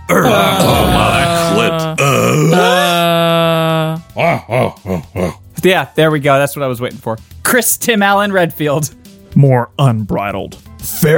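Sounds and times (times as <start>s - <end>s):
several people grunting and groaning: 0.0s - 5.5s
speech: 4.3s - 11.1s.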